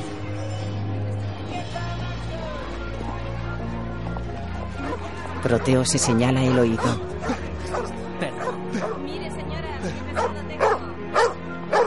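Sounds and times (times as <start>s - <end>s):
street bustle: 0.0s - 11.8s
dog barking: 4.8s - 9.1s, 10.2s - 11.8s
speech: 5.4s - 8.0s
dog whining and whimpering: 6.5s - 9.0s.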